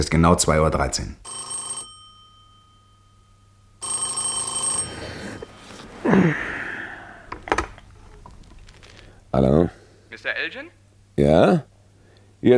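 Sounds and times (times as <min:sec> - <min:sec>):
speech: 0:00.0 - 0:01.5, 0:06.1 - 0:06.5, 0:10.5 - 0:11.7
electronic telephone ring: 0:01.2 - 0:06.0
faint rustling: 0:03.9 - 0:09.3
sharp breathy sound: 0:05.0 - 0:07.4.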